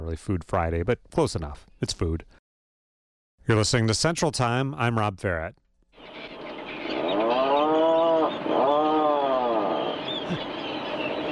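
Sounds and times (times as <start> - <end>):
speech: 0.1 - 2.4, 3.4 - 5.6, 10.3 - 10.5
Atlantic puffin calling with low groaning notes: 6.0 - 11.3
steady background noise: 6.0 - 11.3.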